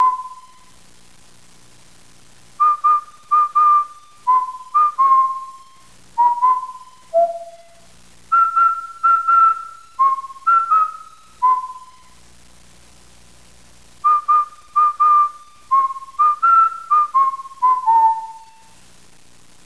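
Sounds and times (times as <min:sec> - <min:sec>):
person whistling: 0:00.0 - 0:00.6, 0:02.6 - 0:12.2, 0:14.0 - 0:18.7.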